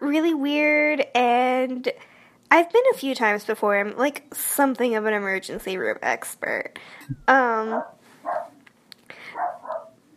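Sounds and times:
speech: 0:00.1 - 0:08.4
dog barking: 0:07.7 - 0:08.6, 0:09.3 - 0:10.0.

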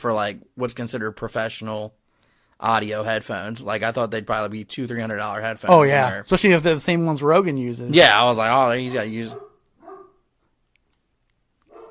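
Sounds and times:
speech: 0:00.0 - 0:02.0, 0:02.6 - 0:09.5
pet dog barking faintly in the background: 0:08.8 - 0:10.2, 0:11.7 - 0:11.8.

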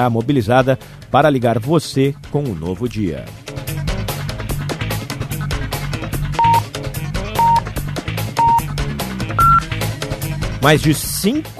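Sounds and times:
speech: 0:00.0 - 0:03.6, 0:10.6 - 0:11.5
busy music: 0:00.0 - 0:11.5
radio station time signal beeps marking seven o'clock: 0:06.4 - 0:06.6, 0:07.4 - 0:07.6, 0:08.4 - 0:08.7, 0:09.4 - 0:09.7.

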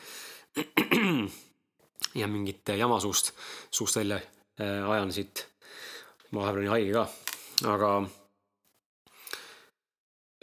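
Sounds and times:
rough voiced throat sound: 0:00.6 - 0:01.4
short sharp coughs: 0:00.6 - 0:01.4
speech: 0:02.2 - 0:08.2.

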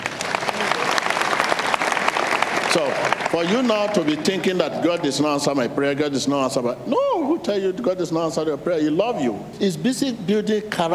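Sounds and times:
crowd applauding: 0:00.0 - 0:05.0
speech: 0:02.8 - 0:10.9.

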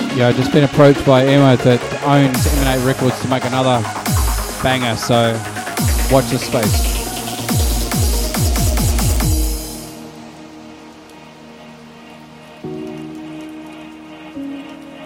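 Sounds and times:
heavy rain on an uninsulated tin roof in New Zealand: 0:00.1 - 0:15.0
speech: 0:00.2 - 0:04.0, 0:04.6 - 0:06.9.

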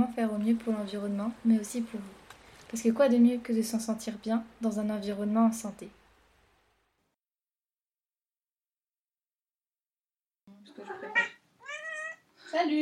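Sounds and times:
speech: 0:00.2 - 0:06.0, 0:12.6 - 0:12.8
cat meowing: 0:11.1 - 0:12.3.

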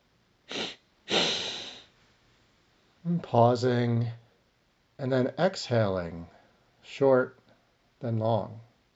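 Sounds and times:
nasal inhalations: 0:00.5 - 0:02.0
speech: 0:03.1 - 0:04.2, 0:05.0 - 0:07.4, 0:08.0 - 0:08.7.

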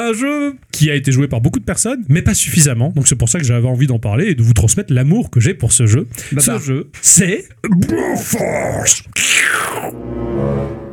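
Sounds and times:
speech: 0:00.0 - 0:10.8
person imitating an eagle cry with gurgling screeches: 0:07.9 - 0:10.0.

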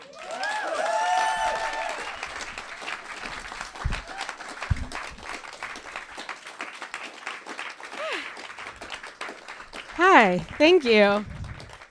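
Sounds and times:
cheering and whooping voices: 0:00.0 - 0:02.7, 0:03.9 - 0:04.6
audience applauding: 0:00.0 - 0:11.9
speech: 0:10.2 - 0:11.3.

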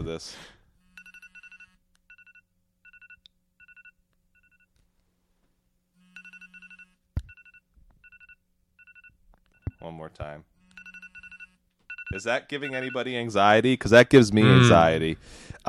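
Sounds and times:
speech: 0:00.1 - 0:00.6, 0:09.8 - 0:10.5, 0:12.1 - 0:15.6
phone wake-up alarm ringing: 0:00.9 - 0:04.7, 0:06.0 - 0:09.9, 0:10.6 - 0:13.2.

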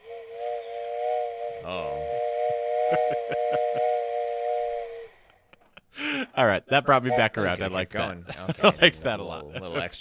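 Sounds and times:
steam train whistle: 0:00.0 - 0:05.4
speech: 0:01.6 - 0:02.1, 0:02.9 - 0:03.9, 0:06.4 - 0:09.9
laughter: 0:02.9 - 0:04.0, 0:07.6 - 0:09.9.

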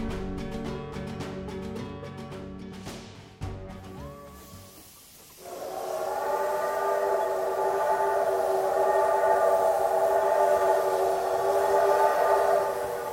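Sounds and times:
steam train running: 0:03.8 - 0:13.1.

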